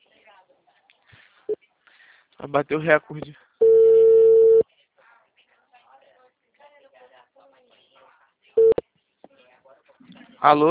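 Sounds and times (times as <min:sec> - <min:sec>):
faint talk: 0:00.0 - 0:02.4, 0:04.6 - 0:10.6
speech: 0:02.4 - 0:03.4, 0:10.4 - 0:10.6
steady mid-pitched telephone tone after a dropped call: 0:03.6 - 0:04.6, 0:08.6 - 0:08.8.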